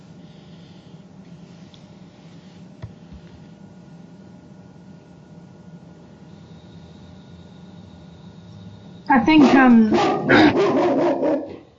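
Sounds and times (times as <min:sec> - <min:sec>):
speech: 0:09.1 - 0:11.3
big protective dog barking at someone walking on the street: 0:09.2 - 0:11.6.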